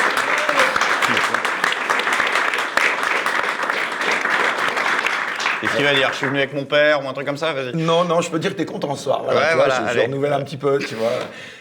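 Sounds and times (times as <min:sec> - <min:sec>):
crowd applauding: 0:00.0 - 0:06.5
speech: 0:05.8 - 0:11.5.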